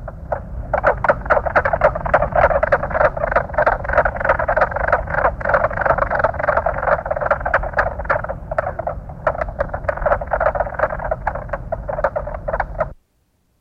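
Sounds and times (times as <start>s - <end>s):
mink frog calling in sharp knocking croaks: 0.0s - 13.0s.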